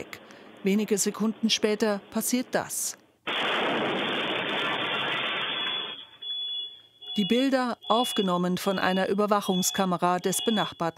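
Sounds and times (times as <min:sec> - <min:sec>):
speech: 0:00.0 - 0:03.4, 0:07.2 - 0:10.9
explosive device detonating outside a bar: 0:03.2 - 0:06.2.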